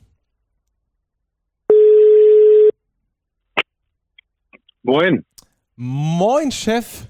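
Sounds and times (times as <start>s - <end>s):
telephone ringback tone of an outgoing call: 1.7s - 2.7s
speech: 4.8s - 7.0s.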